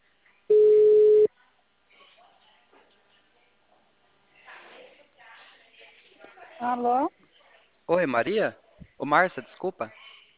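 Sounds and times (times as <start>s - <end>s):
telephone tone as a call is placed: 0.5s - 1.3s
speech: 6.6s - 7.2s, 7.9s - 10.0s.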